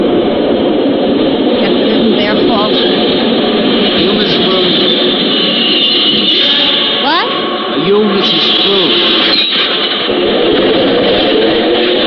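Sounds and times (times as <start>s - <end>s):
subway train roaring through a station: 0.0s - 12.0s
faint metallic squeals: 3.9s - 7.6s, 8.2s - 10.1s.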